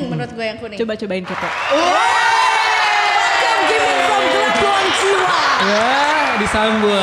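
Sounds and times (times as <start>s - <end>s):
speech: 0.2s - 2.4s, 3.6s - 7.0s
large stadium crowd cheering and shouting: 1.2s - 7.0s.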